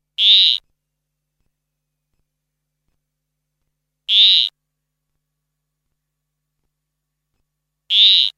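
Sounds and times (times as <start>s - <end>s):
frog: 0.2s - 0.6s, 4.1s - 4.6s, 7.9s - 8.3s.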